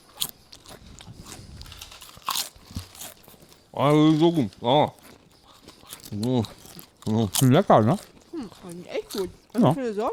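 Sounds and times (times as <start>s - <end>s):
tomato and herbs flavoured potato crisps being crunched: 0.0s - 10.1s
speech: 3.8s - 5.0s, 6.1s - 10.1s.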